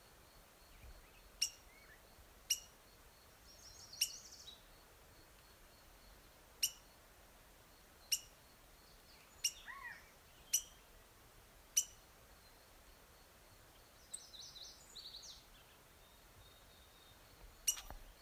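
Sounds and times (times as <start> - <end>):
black-headed grosbeak Pheucticus melanocephalus singing: 0.7 - 2.8, 3.5 - 4.7, 8.0 - 10.9, 11.8 - 12.6, 13.8 - 18.1.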